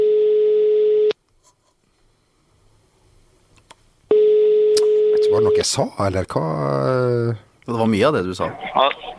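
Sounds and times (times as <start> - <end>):
telephone ringing tone while placing a call: 0.0 - 1.1, 4.1 - 5.6
speech: 5.6 - 9.1.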